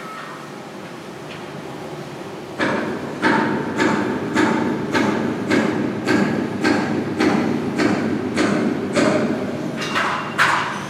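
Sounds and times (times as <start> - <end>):
workers hammering on a ship's hull: 2.6 - 10.8.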